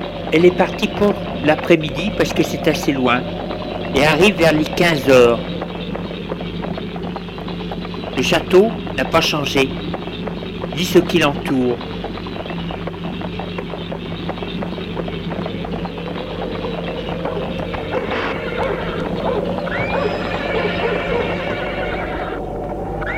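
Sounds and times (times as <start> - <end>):
horse hooves clopping: 0.0 - 23.1
speech: 0.3 - 5.6, 8.2 - 9.9, 10.8 - 11.9
horse whinnying: 17.3 - 22.4.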